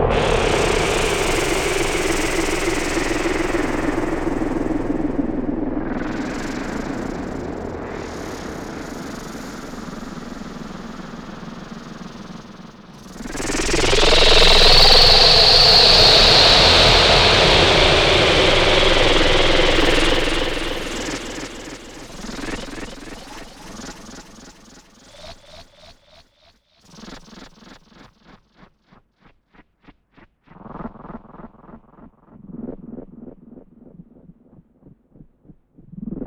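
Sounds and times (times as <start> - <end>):
laughing insects: 0.1 - 25.9.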